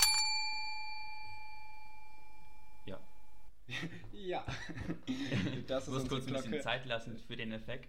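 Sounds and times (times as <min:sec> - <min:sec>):
bell strike ringing: 0:00.0 - 0:03.5
laughter: 0:03.7 - 0:06.2
speech: 0:03.7 - 0:07.8.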